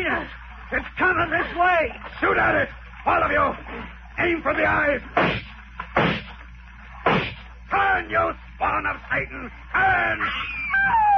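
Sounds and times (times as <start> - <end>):
low rumbling hum: 0.0 - 11.1
speech: 0.3 - 5.5, 7.7 - 11.0
large sea creature's tail striking a raft, heavy splashy thumps: 5.1 - 7.5.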